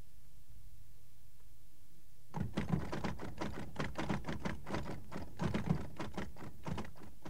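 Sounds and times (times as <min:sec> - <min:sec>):
room hum: 0:00.0 - 0:07.2
manual typewriter keystrokes: 0:02.4 - 0:07.2.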